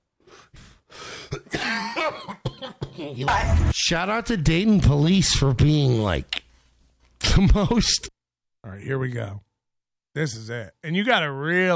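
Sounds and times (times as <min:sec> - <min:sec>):
man suppressing coughs while taking cannabis dabs: 0:01.2 - 0:03.3
speech: 0:03.0 - 0:06.4, 0:07.4 - 0:09.4, 0:10.2 - 0:11.7.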